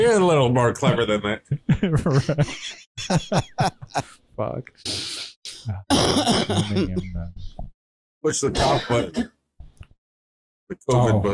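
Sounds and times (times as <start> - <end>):
speech: 0.0 - 9.4, 10.7 - 11.3
laughter: 0.9 - 4.2, 6.4 - 7.3
wet cough from a long-time smoker: 5.9 - 7.1, 8.5 - 9.3.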